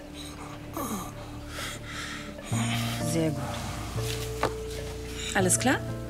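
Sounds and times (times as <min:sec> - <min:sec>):
person breathing heavily: 0:00.0 - 0:04.3
speech: 0:02.5 - 0:04.2, 0:05.4 - 0:06.0.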